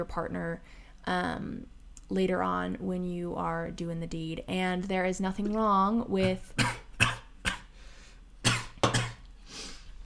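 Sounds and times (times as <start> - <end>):
speech: 0.0 - 6.8
person coughing after inhaling alcohol the wrong way: 6.2 - 7.7, 8.4 - 9.3.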